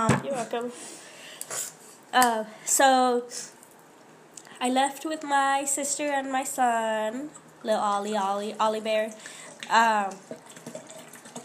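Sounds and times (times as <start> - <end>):
speech: 0.0 - 3.6, 4.6 - 10.6
wine pouring into a glass with a gurgling ring: 9.4 - 11.4.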